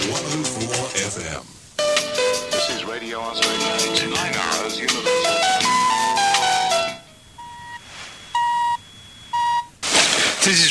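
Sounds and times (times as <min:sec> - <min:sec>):
faint hiss: 0:00.0 - 0:10.6
speech: 0:00.9 - 0:01.6, 0:02.7 - 0:05.4, 0:10.5 - 0:10.6
busy musical tone sequence: 0:01.8 - 0:09.6
top of the hour radio time signal electronic pips: 0:04.9 - 0:09.7.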